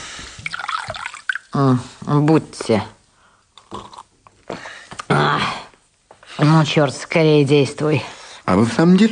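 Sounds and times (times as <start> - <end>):
water pouring into a glass for drinking: 0.4 - 1.6
speech: 1.6 - 3.0, 6.6 - 9.1.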